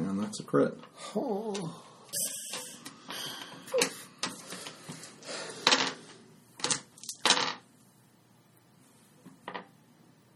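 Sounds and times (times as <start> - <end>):
speech: 0.3 - 2.3
dice clattering across a hard tabletop: 5.6 - 6.0, 6.6 - 7.6.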